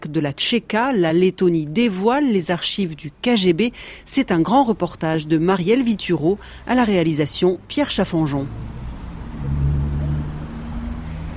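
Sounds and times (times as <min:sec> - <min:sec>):
speech: 0:00.0 - 0:08.8
traffic engines rumbling at a busy intersection in Latvia: 0:03.1 - 0:11.3
heavier vehicle passing: 0:08.2 - 0:11.3.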